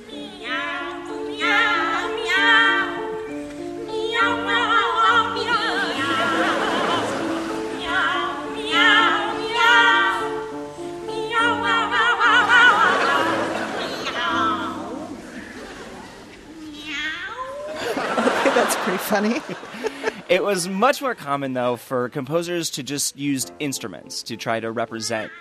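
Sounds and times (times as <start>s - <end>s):
piano accompaniment: 0.0s - 15.9s, 23.2s - 25.3s
two sopranos singing meow in a cat duet on stage: 0.1s - 3.1s, 3.9s - 15.1s, 24.8s - 25.3s
laughter: 5.8s - 7.9s, 12.4s - 16.2s, 17.6s - 21.2s
speech: 19.2s - 25.3s.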